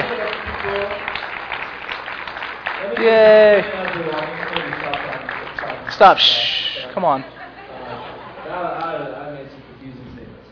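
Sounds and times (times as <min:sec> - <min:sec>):
audience clapping: 0:00.0 - 0:07.0
crowd noise: 0:00.0 - 0:10.5
speech: 0:03.0 - 0:04.1, 0:06.0 - 0:07.4
laughter: 0:07.2 - 0:08.9.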